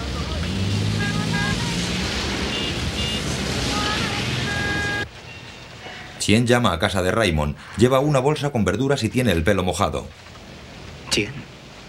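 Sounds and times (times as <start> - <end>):
passing engine rumble: 0.0 - 5.9
rain hiss in a city centre in Taipei: 0.0 - 11.8
rush hour city traffic in Taipei: 0.0 - 11.8
speech: 6.3 - 10.3, 11.2 - 11.5.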